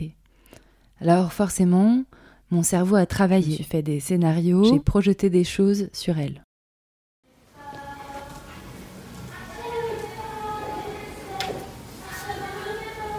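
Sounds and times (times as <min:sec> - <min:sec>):
speech: 0:01.0 - 0:06.4
steady hiss of noise: 0:07.3 - 0:13.1
woman singing muffled through walls: 0:07.4 - 0:13.1.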